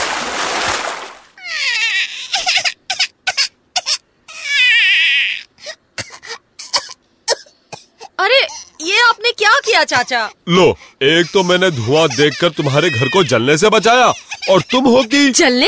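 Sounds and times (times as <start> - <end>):
bucketful of water thrown through an opened door into a house: 0.0 - 1.3
high-pitched wavering yelps and sputtering cries: 1.4 - 5.5, 11.2 - 15.1
speech: 9.3 - 15.6.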